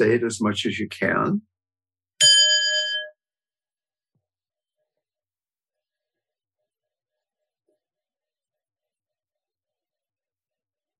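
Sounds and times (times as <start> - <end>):
speech: 0.0 - 1.5
single bell struck with a bright clear tone: 2.2 - 3.1.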